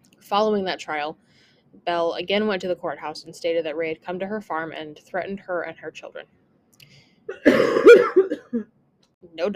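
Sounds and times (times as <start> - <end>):
speech: 0.3 - 6.4, 7.3 - 9.5
coughing fit: 7.3 - 8.7.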